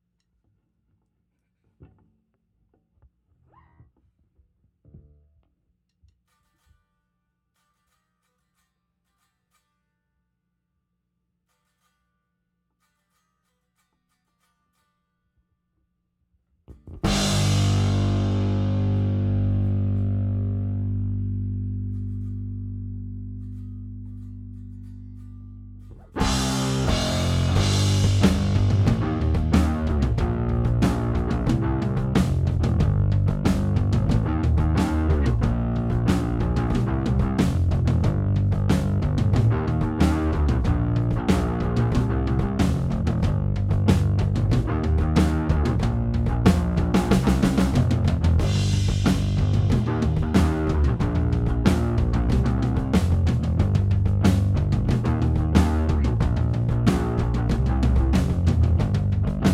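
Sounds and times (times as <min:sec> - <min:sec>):
bass: 0:04.6 - 0:05.6, 0:16.7 - 0:59.5
drums: 0:16.7 - 0:21.5, 0:26.0 - 0:59.5.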